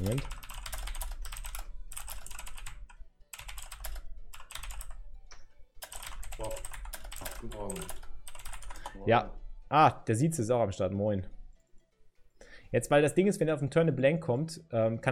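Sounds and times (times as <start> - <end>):
speech: 0.0 - 0.4, 7.4 - 8.0, 9.0 - 11.4, 12.7 - 15.1
typing a message on a computer keyboard: 0.0 - 5.0, 5.8 - 9.0.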